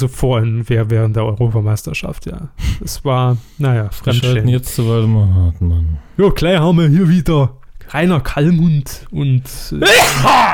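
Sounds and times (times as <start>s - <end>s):
speech: 0.0s - 10.5s
loud sharp sneeze: 9.8s - 10.5s.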